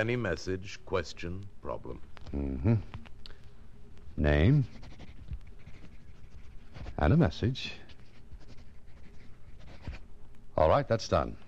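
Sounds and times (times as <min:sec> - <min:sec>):
speech: 0:00.0 - 0:03.0, 0:04.2 - 0:04.9, 0:07.0 - 0:07.8, 0:10.6 - 0:11.4
pen scratching on a slip of paper: 0:04.4 - 0:10.0.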